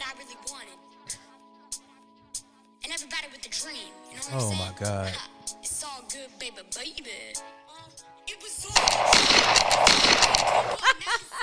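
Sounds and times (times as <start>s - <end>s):
speech: 3.0s - 11.4s
faint voice-like sounds: 4.2s - 5.3s
cheesy hissy gunshot sound effect: 8.8s - 10.8s.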